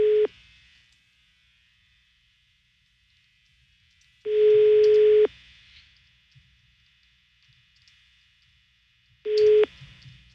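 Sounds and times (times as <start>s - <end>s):
telephone line ringback tones: 0.0s - 0.3s, 4.3s - 5.3s, 9.3s - 9.7s.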